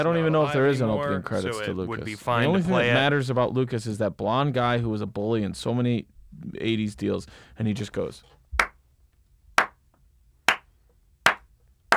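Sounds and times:
speech: 0:00.0 - 0:08.4
single person doing a slow clap: 0:09.6 - 0:09.8, 0:10.5 - 0:11.9.

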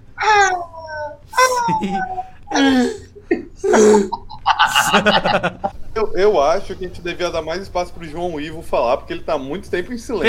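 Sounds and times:
person imitating Galápagos giant tortoise little cries: 0:00.2 - 0:04.9
laughter: 0:01.4 - 0:02.4, 0:03.2 - 0:06.0
speech: 0:01.7 - 0:03.0, 0:03.8 - 0:04.2, 0:04.9 - 0:05.6, 0:06.2 - 0:10.2.

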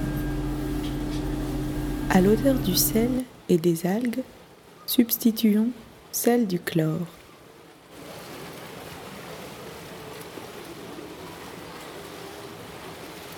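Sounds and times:
waves lapping: 0:00.0 - 0:03.2, 0:06.8 - 0:13.3
speech: 0:02.1 - 0:07.2.

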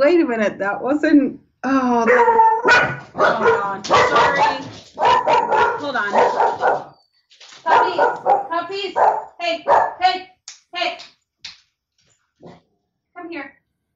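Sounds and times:
speech: 0:00.0 - 0:06.9, 0:07.6 - 0:11.1
puppies barking: 0:02.1 - 0:07.0, 0:07.7 - 0:10.0.

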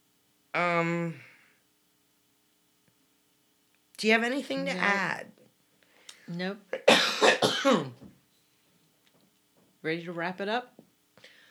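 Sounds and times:
speech: 0:00.6 - 0:01.3, 0:04.0 - 0:05.4, 0:06.3 - 0:08.1, 0:09.8 - 0:10.8
person stifling a cough with a strained voiced hum: 0:06.8 - 0:08.0.

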